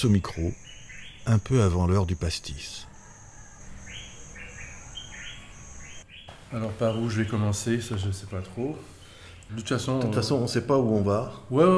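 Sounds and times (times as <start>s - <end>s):
speech: 0.0s - 2.9s, 6.5s - 11.7s
faint insect-like drone: 0.0s - 6.0s
bird chirps at a guesthouse with a pool: 0.0s - 7.5s
outdoor ambience hum at a guesthouse with a pool: 0.0s - 11.7s.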